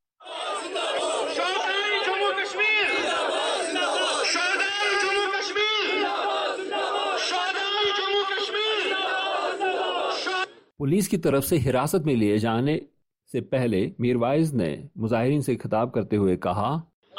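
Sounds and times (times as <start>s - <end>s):
large crowd of party workers and supporters chanting slogans: 0.2s - 10.7s
speech: 10.8s - 16.9s.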